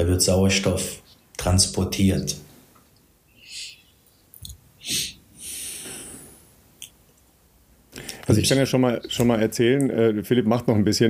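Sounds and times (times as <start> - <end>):
speech: 0.0 - 2.4, 4.8 - 5.0, 8.3 - 11.0
breathing through the nose during breathwork: 4.8 - 6.4.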